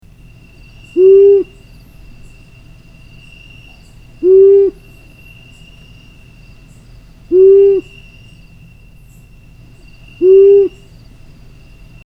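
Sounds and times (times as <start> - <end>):
long-eared owl: 0.8 - 1.7, 3.3 - 5.4, 7.3 - 8.5, 10.0 - 10.9.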